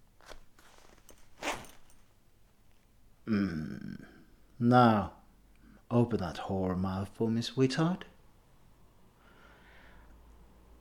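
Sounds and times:
soft rustling of clothing: 0.0s - 2.2s
zipper pulled down: 0.2s - 2.0s
person making low voiced sound: 3.3s - 4.1s
speech: 3.3s - 5.2s, 5.9s - 8.1s.

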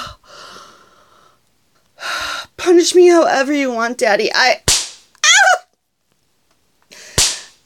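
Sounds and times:
speech: 2.8s - 4.7s
single sharp slap on skin: 4.7s - 5.1s, 7.2s - 7.5s.

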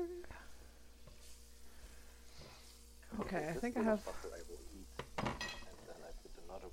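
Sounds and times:
pancake batter frying in a buttered pan: 1.0s - 5.8s
speech: 3.2s - 4.8s.

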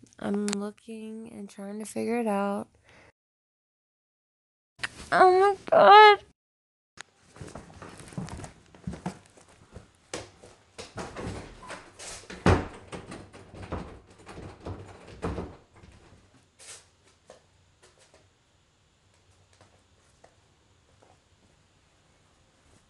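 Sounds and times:
speech: 0.2s - 2.8s, 5.1s - 6.3s
bedroom door being shut and locked: 11.0s - 15.8s.

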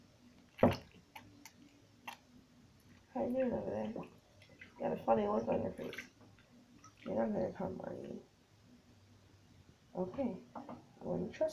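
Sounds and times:
soapy sponge squeezed with soap and water: 2.9s - 6.2s, 6.8s - 8.1s
speech: 3.3s - 4.2s, 4.8s - 6.1s, 7.1s - 8.3s, 10.0s - 11.5s.

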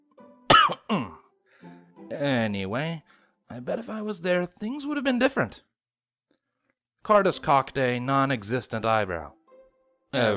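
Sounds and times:
sharp coughs: 0.5s - 1.2s
speech: 0.9s - 1.2s, 2.1s - 5.7s, 7.0s - 9.4s, 10.1s - 10.3s.

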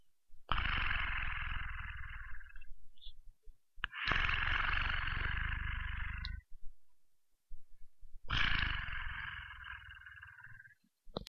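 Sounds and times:
cat purring: 0.5s - 2.7s, 3.8s - 6.5s, 8.3s - 10.8s.

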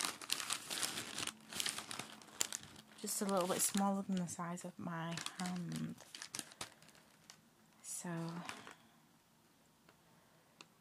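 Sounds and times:
wrapping paper crinkling as a hand feels a small box: 0.0s - 7.4s, 8.1s - 8.8s
speech: 3.0s - 6.2s, 8.0s - 8.6s.

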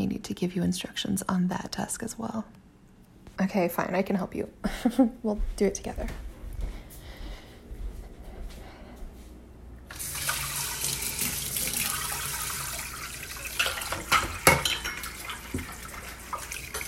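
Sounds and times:
speech: 0.2s - 2.6s, 3.4s - 6.3s
faucet water running in a sink: 9.9s - 16.8s
dishes clinking and scraping: 13.4s - 16.8s.

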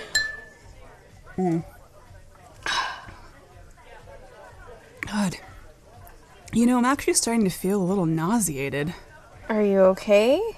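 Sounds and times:
glasses clinking in a toast: 0.0s - 0.6s
speech: 1.4s - 1.8s, 5.1s - 5.5s, 6.5s - 10.5s.

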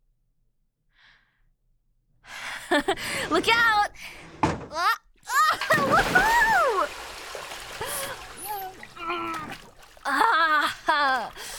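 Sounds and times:
speech: 2.8s - 4.9s
voices exclaiming and calling out: 4.7s - 7.0s, 7.8s - 11.4s
water splashing and sloshing in a bath as two people get in: 5.3s - 11.5s.

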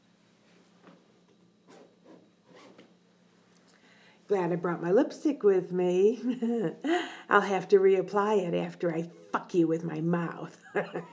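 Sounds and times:
faint steady hum: 0.0s - 11.1s
clothing zipper being unzipped: 1.7s - 2.9s
speech: 4.3s - 11.1s.

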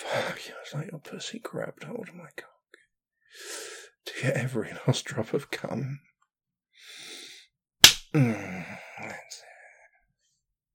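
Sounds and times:
speech: 0.1s - 2.5s, 3.3s - 6.1s, 8.1s - 9.4s
hand slap on skin: 7.8s - 8.1s
voiced vocal sound: 8.1s - 9.4s.

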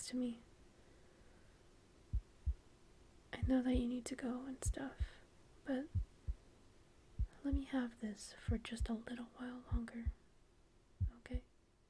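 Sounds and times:
speech: 0.1s - 0.5s, 3.3s - 6.1s, 7.4s - 10.2s, 11.3s - 11.5s
heartbeat thumps: 2.1s - 2.6s, 3.4s - 3.9s, 4.7s - 5.2s, 5.9s - 6.4s, 7.2s - 7.8s, 8.5s - 9.0s, 9.7s - 10.2s, 11.0s - 11.5s.

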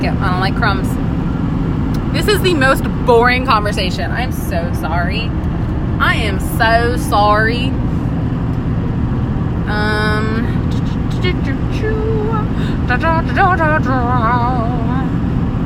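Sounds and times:
engine rumble heard from inside a moving truck: 0.0s - 15.6s
speech: 0.1s - 1.0s, 2.1s - 7.9s, 11.2s - 15.2s.

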